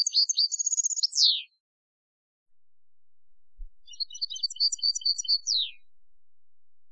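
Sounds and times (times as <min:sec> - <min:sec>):
European goldfinch song of liquid twittering and buzzy trills: 0:00.0 - 0:01.6, 0:03.8 - 0:05.9.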